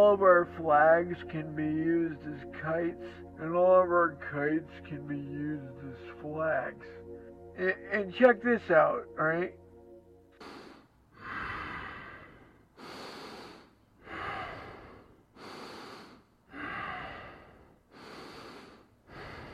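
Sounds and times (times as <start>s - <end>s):
speech: 0.0s - 7.0s, 7.6s - 9.6s
sleeping person breathing slowly and loudly with rasping snore-like breaths: 10.4s - 19.5s.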